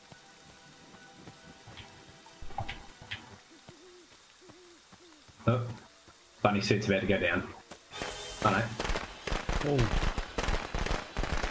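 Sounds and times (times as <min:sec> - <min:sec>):
speech: 0:05.5 - 0:05.8, 0:06.4 - 0:07.6, 0:09.6 - 0:10.0
firecrackers popping: 0:07.9 - 0:11.4.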